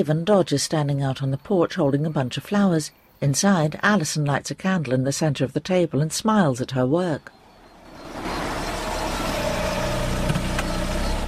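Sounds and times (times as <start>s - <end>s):
speech: 0.0s - 7.4s
car driving up and idling: 7.3s - 11.2s.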